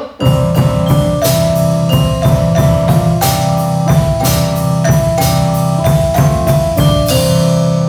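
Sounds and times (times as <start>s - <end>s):
break bell instrumental: 0.2s - 7.8s.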